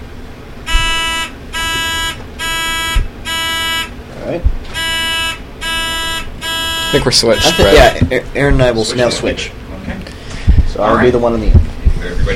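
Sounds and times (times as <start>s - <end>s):
quiz buzzers beeping during a buzzer check: 0.6s - 4.0s, 4.7s - 8.2s
speech: 6.9s - 9.6s, 10.8s - 12.3s.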